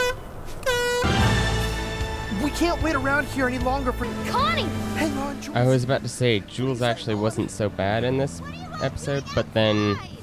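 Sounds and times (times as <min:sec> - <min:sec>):
air horn blasting: 0:00.0 - 0:02.2
speech: 0:02.5 - 0:10.1.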